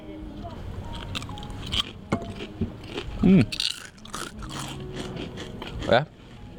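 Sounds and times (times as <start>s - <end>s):
person humming mid-chew: 0.9s - 6.5s
crunching thin homemade fried potato chips: 1.0s - 6.0s
speech: 3.2s - 3.7s, 5.9s - 6.2s.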